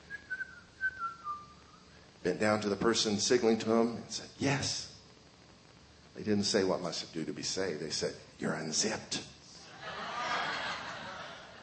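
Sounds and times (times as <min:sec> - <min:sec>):
man whistling casually: 0:00.0 - 0:01.9
speech: 0:02.2 - 0:04.9, 0:06.2 - 0:09.3
laughter: 0:09.6 - 0:11.6.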